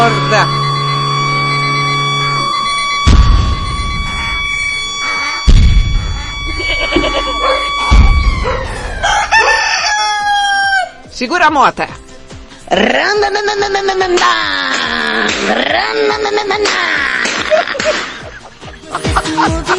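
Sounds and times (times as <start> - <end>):
steady droning tone: 0.0 - 9.6
speech: 0.1 - 0.6, 11.2 - 12.0, 12.7 - 18.1, 18.9 - 19.7
rooster crowing: 0.5 - 11.0
sharp thumping bursts: 1.9 - 4.8, 5.4 - 8.9
laughter: 6.5 - 7.8, 15.0 - 19.7.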